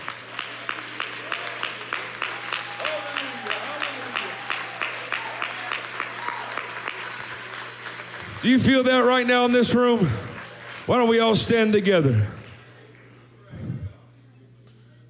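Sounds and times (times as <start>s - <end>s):
audience clapping in rhythmic unison: 0.0s - 13.1s
speech: 8.4s - 10.3s, 10.9s - 12.4s
faint murmuring voices: 12.5s - 15.0s.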